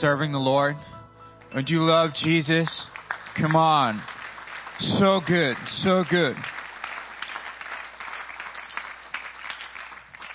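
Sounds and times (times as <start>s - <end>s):
speech: 0.0s - 4.2s, 4.8s - 6.6s
large audience at a church service applauding a pastor: 2.2s - 10.3s.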